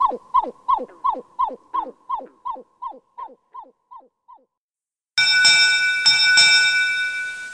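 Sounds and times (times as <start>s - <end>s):
pied-billed grebe hollow hooting call: 0.0s - 4.5s
sustained ringing bell-like tone: 5.2s - 7.5s.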